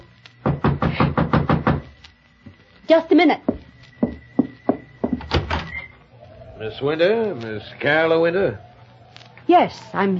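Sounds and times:
knocking on a wooden cabin door: 0:00.4 - 0:01.9, 0:03.4 - 0:05.5
speech: 0:02.9 - 0:03.6, 0:06.6 - 0:08.7, 0:09.5 - 0:10.1.

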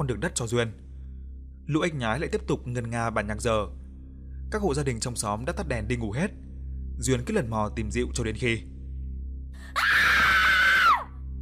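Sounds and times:
speech: 0:00.0 - 0:00.8, 0:01.7 - 0:03.8, 0:04.5 - 0:06.4, 0:07.0 - 0:08.7, 0:09.7 - 0:10.2
high-pitched scream from a back garden at night: 0:09.8 - 0:11.1.

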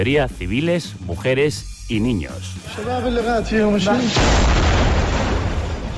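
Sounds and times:
speech: 0:00.0 - 0:05.0
bomb exploding in a hospital courtyard: 0:04.1 - 0:05.9.

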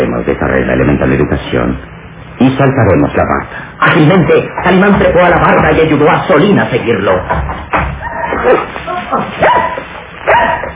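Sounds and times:
speech: 0:00.2 - 0:09.8
dogs barking at a house at intruders: 0:08.0 - 0:10.7.

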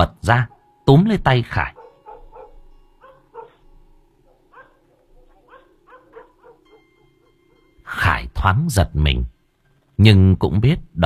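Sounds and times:
speech: 0:00.0 - 0:01.8, 0:07.9 - 0:09.3, 0:10.0 - 0:11.0
dogs barking in short sharp yaps: 0:01.6 - 0:07.8.

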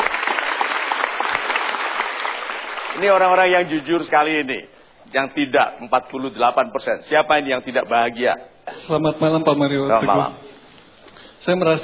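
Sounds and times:
studio audience applause at a live talk show: 0:00.0 - 0:03.9
speech: 0:03.0 - 0:10.5, 0:11.4 - 0:11.8.

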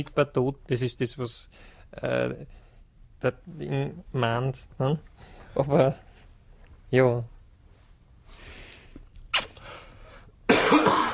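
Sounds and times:
speech: 0:00.0 - 0:02.6, 0:03.2 - 0:06.1, 0:06.9 - 0:07.3
smoker coughing during a cigarette break: 0:10.5 - 0:11.1.

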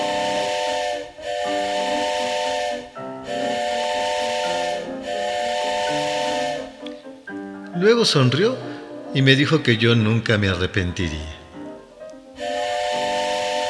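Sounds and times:
steam train whistle: 0:00.0 - 0:07.0, 0:12.3 - 0:13.6
steam hissing: 0:00.0 - 0:07.2, 0:11.5 - 0:13.6
speech: 0:07.8 - 0:11.4.

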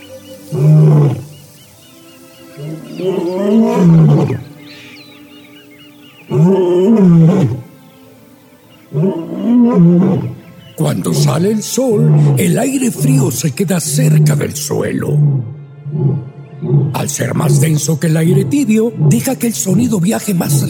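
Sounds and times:
lions roaring at dawn in the African savanna: 0:02.6 - 0:04.4, 0:06.3 - 0:07.7, 0:08.9 - 0:10.4, 0:11.0 - 0:17.6
speech: 0:03.0 - 0:04.4, 0:11.2 - 0:20.6.

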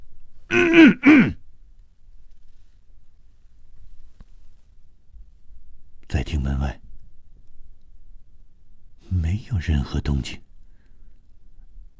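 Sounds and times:
faint low noise: 0:00.0 - 0:11.9
man coughing: 0:00.5 - 0:01.4
speech: 0:09.5 - 0:10.5.

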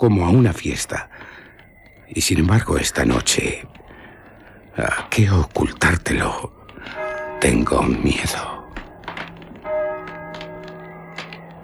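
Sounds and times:
speech: 0:00.0 - 0:01.3, 0:02.1 - 0:03.9, 0:04.8 - 0:08.5
church bell tolling for evening prayer: 0:06.6 - 0:11.6.

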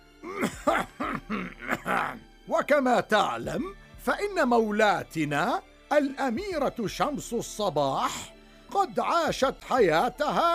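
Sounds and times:
voice imitating hoarse coughing and groaning: 0:00.2 - 0:02.2
speech: 0:02.6 - 0:10.5.

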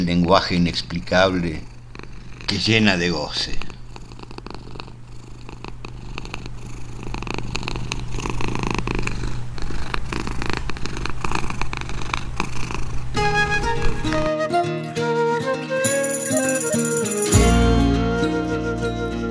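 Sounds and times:
speech: 0:00.0 - 0:01.7, 0:02.5 - 0:03.7
cat purring: 0:01.4 - 0:02.5, 0:03.7 - 0:13.1
music: 0:13.2 - 0:19.2.

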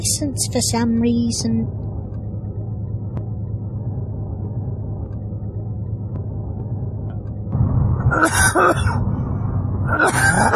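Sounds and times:
speech: 0:00.0 - 0:01.8
low murmuring rumble: 0:00.0 - 0:10.5
rough coughing: 0:08.1 - 0:09.0, 0:09.9 - 0:10.5.

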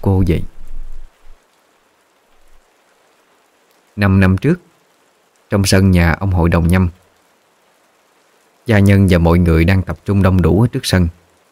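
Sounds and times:
speech: 0:00.0 - 0:00.5, 0:04.0 - 0:04.7, 0:05.5 - 0:07.0, 0:08.7 - 0:11.2
dull low thumps: 0:00.0 - 0:01.4
steady rain falling outside a house: 0:00.0 - 0:11.5.

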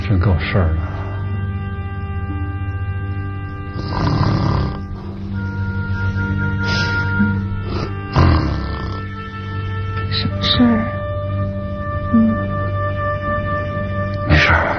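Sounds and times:
steady hum: 0:00.0 - 0:14.7
speech: 0:00.1 - 0:00.9
person snoring: 0:03.8 - 0:04.9, 0:07.6 - 0:09.1.

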